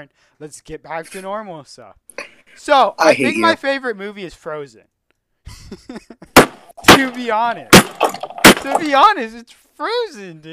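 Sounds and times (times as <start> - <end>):
speech: 0.0 - 4.9, 5.5 - 6.4, 7.0 - 10.5
person making strained vocal sounds: 3.0 - 3.6
fist punching a desk: 6.4 - 8.9.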